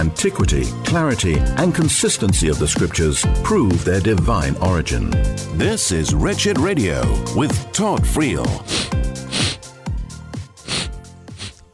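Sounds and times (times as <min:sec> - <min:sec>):
speech: 0:00.0 - 0:09.0
wet sniffles through the nose into a microphone: 0:08.6 - 0:09.7, 0:10.6 - 0:11.7.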